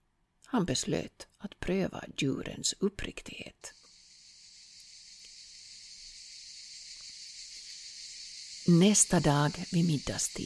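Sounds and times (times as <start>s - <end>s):
speech: 0.5s - 3.8s, 8.7s - 10.4s
cicadas shrilling: 3.7s - 10.4s.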